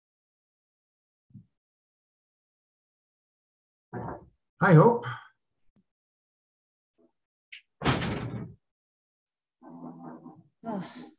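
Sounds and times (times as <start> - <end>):
speech: 4.2 - 5.2, 10.6 - 11.1
door closing with click, whoosh and thud: 7.6 - 8.6.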